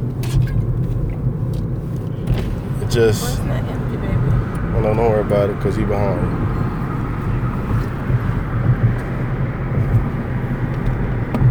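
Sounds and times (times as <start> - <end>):
car driving along a damaged street: 0.0 - 11.4
speech: 2.9 - 3.8, 4.8 - 6.6.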